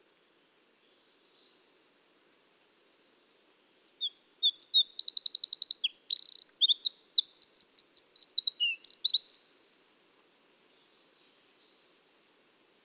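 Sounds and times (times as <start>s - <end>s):
Eurasian wren Troglodytes troglodytes song: 3.7s - 9.8s.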